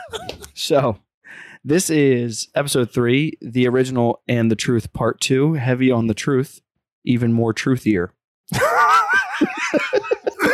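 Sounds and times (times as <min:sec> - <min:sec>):
speech: 0:00.1 - 0:10.5
loud breathy wheezy laughter: 0:08.5 - 0:10.5.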